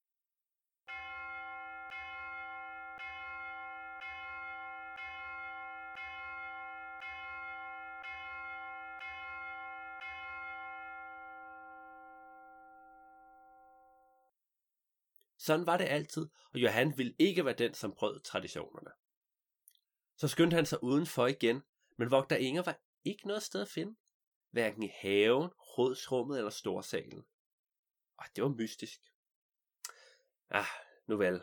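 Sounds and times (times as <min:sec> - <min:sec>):
large resonant bell rung by hauling on a rope: 0:00.9 - 0:14.0
speech: 0:15.4 - 0:19.0, 0:20.2 - 0:27.3, 0:28.2 - 0:29.1, 0:30.5 - 0:31.4.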